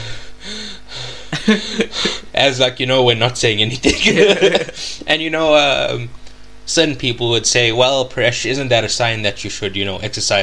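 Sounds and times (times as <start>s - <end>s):
heavy breathing: 0.0s - 2.3s
laughter: 1.3s - 2.3s, 3.8s - 4.8s
speech: 1.5s - 10.4s.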